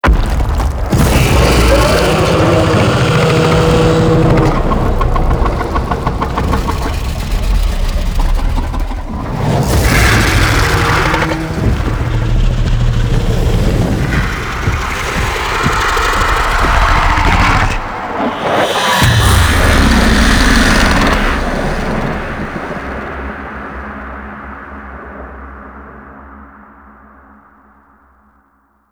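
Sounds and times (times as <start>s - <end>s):
monster spawning with fire: 0.0s - 23.4s.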